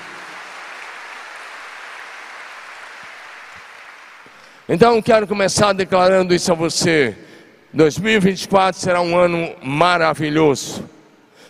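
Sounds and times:
congregation clapping: 0.0s - 4.7s
speech: 4.7s - 11.0s.

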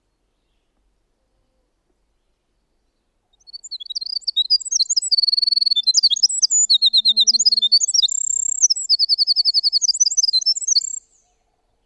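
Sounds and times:
winter wren song: 3.3s - 11.8s.

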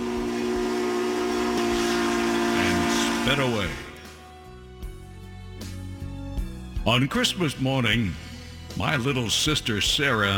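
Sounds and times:
steam train whistle blast: 0.0s - 4.5s
speech: 3.3s - 3.9s, 6.8s - 8.2s, 8.8s - 10.3s.

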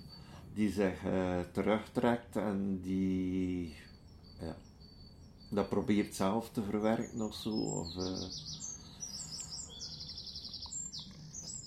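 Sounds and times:
speech: 0.6s - 4.7s, 5.5s - 8.6s
finch calls with high chirps and rapid trills: 3.7s - 11.6s.

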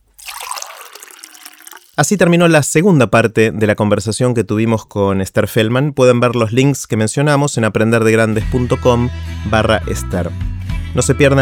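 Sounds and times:
water pouring into a glass: 0.0s - 2.3s
speech: 2.0s - 11.4s.

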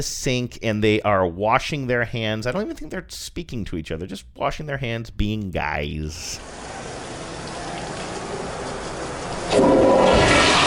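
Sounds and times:
speech: 0.0s - 7.0s
toilet flushing in a restroom: 6.4s - 10.6s.

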